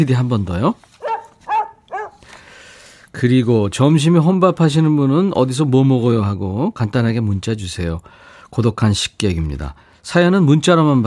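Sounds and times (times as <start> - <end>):
speech: 0.0 - 0.9, 3.1 - 11.0
dog barking loud and close: 1.0 - 2.3.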